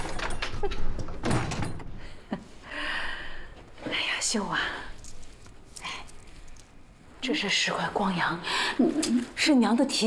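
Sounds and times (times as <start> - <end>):
door being opened with rustling and creaking: 0.0 - 2.0
speech: 0.6 - 0.8, 4.3 - 4.8, 7.2 - 10.0.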